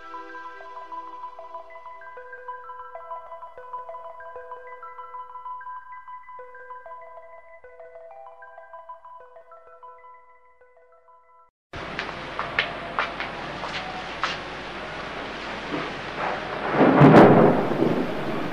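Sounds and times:
soft chiming tones: 0:00.0 - 0:11.5
steady stormy rush: 0:11.8 - 0:18.5
thunder rumbling and cracking: 0:11.8 - 0:18.5.

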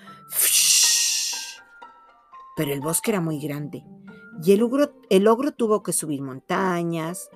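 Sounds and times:
voice imitating a strong rushing wind with a breathy whoosh: 0:00.3 - 0:01.6
speech: 0:02.6 - 0:07.3.

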